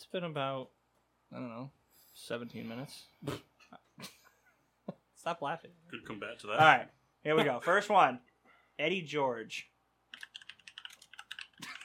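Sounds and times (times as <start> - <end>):
speech: 0.1 - 4.2, 4.9 - 9.7
typing on a computer keyboard: 10.1 - 11.8.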